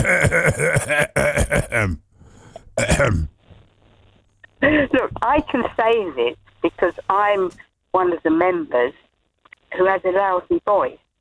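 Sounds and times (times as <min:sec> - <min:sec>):
man clearing his throat: 0:00.0 - 0:03.4
speech: 0:03.0 - 0:03.3, 0:04.6 - 0:09.0, 0:09.7 - 0:11.0.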